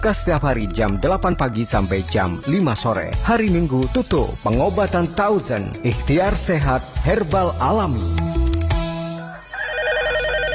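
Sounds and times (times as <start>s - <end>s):
speech: 0.0s - 8.4s
telephone beep: 9.6s - 10.5s
telephone electronic ringtone with a rapid warbling trill: 9.6s - 10.5s.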